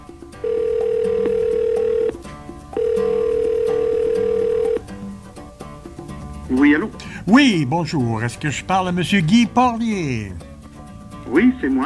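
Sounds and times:
telephone ringing tone as a call is placed: 0:00.4 - 0:02.2, 0:02.8 - 0:04.9
speech: 0:06.7 - 0:10.4, 0:11.3 - 0:11.8.

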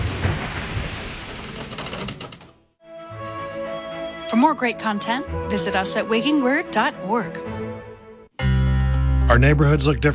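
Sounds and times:
deep rolling thunder: 0:00.0 - 0:01.7
loud dense rain pouring: 0:00.0 - 0:02.4
speech: 0:04.3 - 0:07.6, 0:09.3 - 0:10.1.

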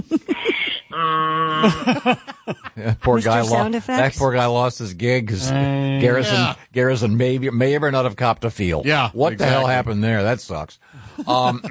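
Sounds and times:
laughter: 0:00.0 - 0:00.9, 0:01.5 - 0:03.7, 0:11.2 - 0:11.7
donkey braying: 0:00.3 - 0:01.8
speech: 0:01.6 - 0:02.2, 0:02.8 - 0:11.7.

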